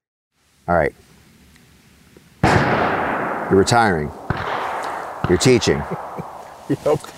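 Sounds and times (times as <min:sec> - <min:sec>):
speech: 0:00.7 - 0:01.1, 0:03.5 - 0:04.2, 0:05.3 - 0:06.0, 0:06.7 - 0:07.1
gunshot at an outdoor shooting range with noise: 0:02.4 - 0:07.1
laughter: 0:05.7 - 0:06.2.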